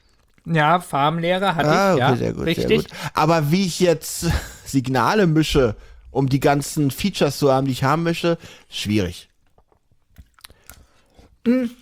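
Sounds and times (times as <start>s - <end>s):
speech: 0.5s - 9.3s, 11.4s - 11.8s
person chewing baked oven cheese for breakfast: 9.4s - 11.8s.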